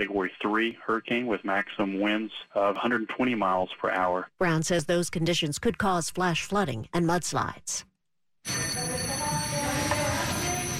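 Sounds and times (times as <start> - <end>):
speech: 0.0 - 8.6
ceremonial handover bell ringing: 8.5 - 10.7.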